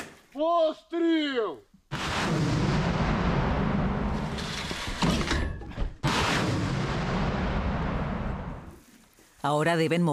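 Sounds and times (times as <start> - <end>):
speech: 0.4 - 1.7, 9.4 - 10.1
heavy artillery fire blasts: 1.9 - 8.7.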